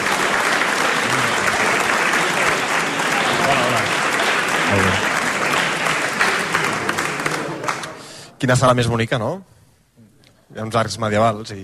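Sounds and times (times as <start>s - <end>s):
room full of people applauding: 0.0s - 8.1s
speech: 8.4s - 9.5s, 10.5s - 11.6s.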